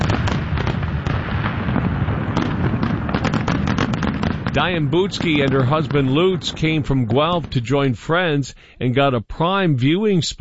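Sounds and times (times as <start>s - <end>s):
fireworks booming and crackling over a river: 0.0s - 8.6s
speech: 4.6s - 10.3s.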